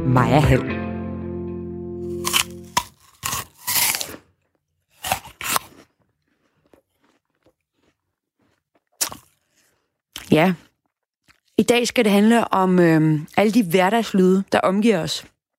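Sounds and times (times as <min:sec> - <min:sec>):
speech: 0:00.1 - 0:00.8, 0:10.4 - 0:10.7, 0:11.6 - 0:15.3
crisp crunches of someone biting into an apple: 0:02.0 - 0:11.6.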